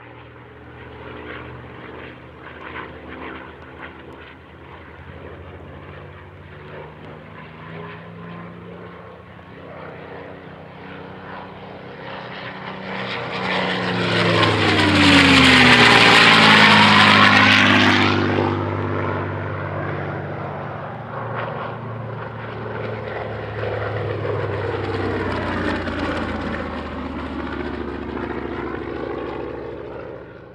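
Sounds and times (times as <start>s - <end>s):
A6M Zero chasing P-51D Mustang propeller planes: 0.0s - 30.5s.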